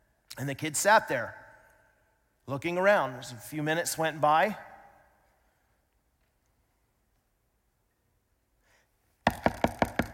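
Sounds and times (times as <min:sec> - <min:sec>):
speech: 0:00.4 - 0:01.4, 0:02.5 - 0:04.7
knocking on a door: 0:09.3 - 0:10.1.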